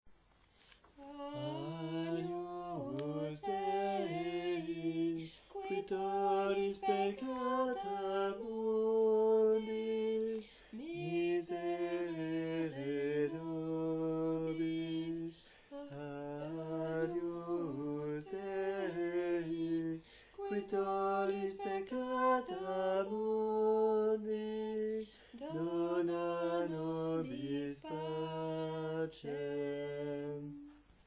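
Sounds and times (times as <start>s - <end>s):
female soprano voice: 1.0s - 30.7s.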